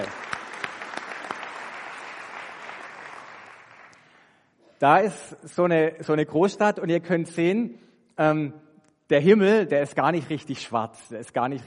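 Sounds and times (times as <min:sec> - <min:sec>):
audience applause: 0:00.0 - 0:04.1
speech: 0:04.8 - 0:11.6.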